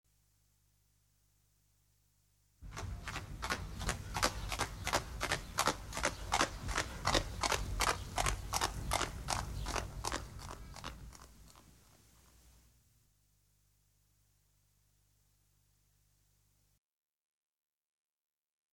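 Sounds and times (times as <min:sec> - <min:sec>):
horse trotting: 0:02.6 - 0:12.0.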